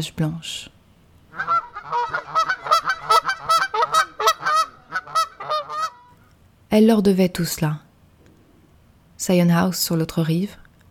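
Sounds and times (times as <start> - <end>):
speech: 0.0 - 0.8, 6.7 - 7.8, 9.2 - 10.6
flock of wild geese honking: 1.3 - 6.1.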